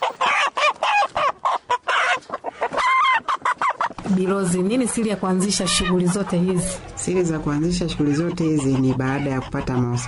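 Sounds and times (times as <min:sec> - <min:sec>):
chickens clucking in a chicken coop: 0:00.0 - 0:10.0
speech: 0:04.1 - 0:10.0.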